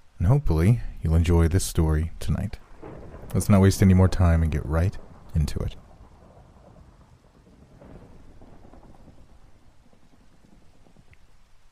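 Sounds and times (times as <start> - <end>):
steady rain pouring down: 0.0 - 11.7
speech: 0.2 - 2.6, 3.3 - 5.8
low rolling rumble of thunder: 2.4 - 11.7.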